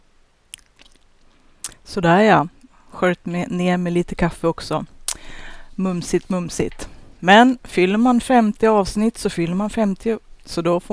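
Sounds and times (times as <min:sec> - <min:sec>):
mouth smacking clicks: 0:00.5 - 0:01.0, 0:01.6 - 0:01.8, 0:05.1 - 0:05.5
chewing soft chocolate cake: 0:00.5 - 0:01.8
speech: 0:01.9 - 0:10.9.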